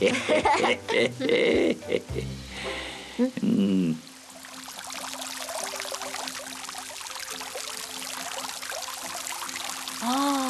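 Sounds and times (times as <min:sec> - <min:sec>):
laughter: 0:00.0 - 0:02.2
water pouring down heavily like a waterfall: 0:04.1 - 0:10.4.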